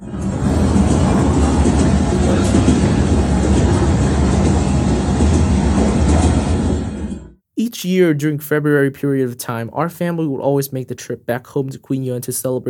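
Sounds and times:
moving passenger train interior rumble in a booked bunker section in Vietnam: 0.0s - 7.3s
speech: 7.8s - 12.6s.

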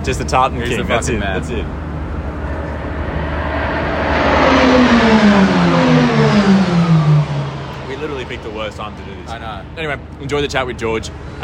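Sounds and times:
people's voices: 0.0s - 1.7s, 7.8s - 11.4s
speech: 0.0s - 1.9s, 5.0s - 5.7s, 8.3s - 11.4s
racing car engines roaring past on a track: 0.0s - 11.4s.

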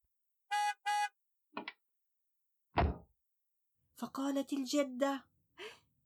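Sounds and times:
car horn honks: 0.5s - 1.1s
heavy car door thudding shut: 2.8s - 3.0s
speech: 4.0s - 5.8s.

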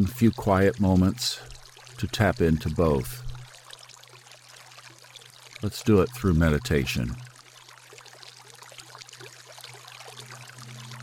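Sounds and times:
speech: 0.0s - 3.3s, 5.6s - 7.3s
steady flowing water: 0.0s - 11.0s
low sustained humming tone: 0.4s - 3.5s, 9.7s - 11.0s.

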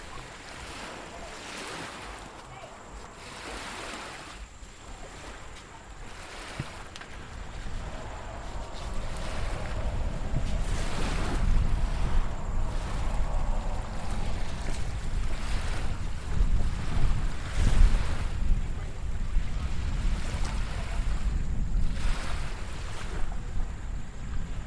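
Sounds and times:
low rumble of wind or surf: 0.0s - 24.6s
waves breaking along a beach: 0.0s - 24.6s
faint thin high whine: 0.9s - 18.9s.

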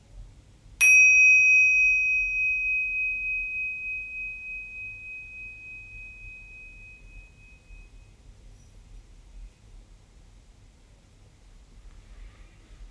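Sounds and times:
bell struck to end meditation: 0.8s - 7.9s
faint low hum: 0.8s - 8.8s.

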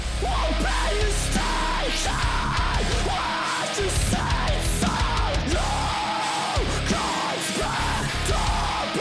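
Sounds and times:
harsh screamed metalcore vocals: 0.0s - 8.9s
loud dense distorted guitars: 0.0s - 8.9s
pounding drums: 0.0s - 8.9s.

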